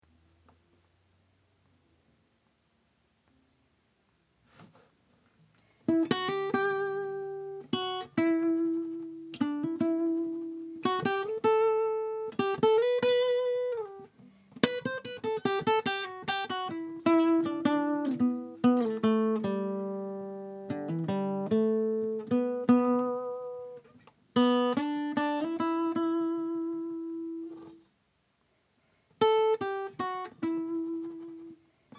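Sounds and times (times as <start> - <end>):
lead guitar: 5.9 - 23.8, 24.4 - 27.8, 29.2 - 31.9.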